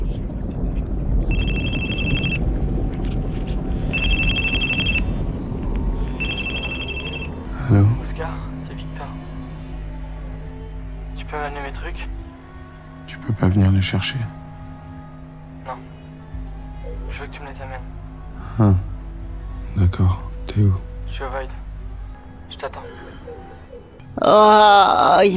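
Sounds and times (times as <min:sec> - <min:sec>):
low droning hum: 0:00.0 - 0:22.4
telephone ringing in buzzy electronic bursts: 0:01.3 - 0:02.4, 0:04.0 - 0:05.1, 0:06.2 - 0:07.4
speech: 0:13.3 - 0:14.4, 0:18.6 - 0:18.8, 0:19.8 - 0:21.6, 0:24.2 - 0:25.3.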